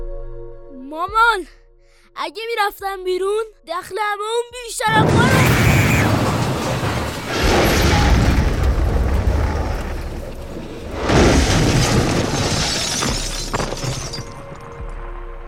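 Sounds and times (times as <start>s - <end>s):
speech: 0.9s - 5.3s
loud explosion strong enough to shake a table: 4.9s - 13.4s
crashing, rattling debris from explosion: 4.9s - 15.0s
low rumble between explosion blasts: 6.1s - 12.6s.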